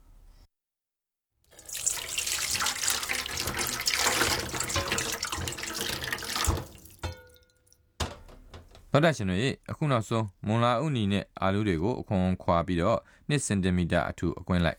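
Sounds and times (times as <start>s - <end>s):
tap water gushing as fried fish balls are rinsed in a strainer: 1.5s - 8.6s
speech: 9.0s - 14.7s.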